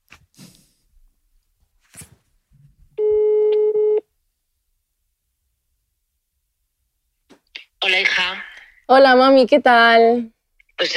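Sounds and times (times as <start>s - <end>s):
faint rustling and small handling noises: 1.4s - 2.8s
phone ringback tone over a speakerphone: 3.0s - 4.0s
speech: 8.3s - 10.9s.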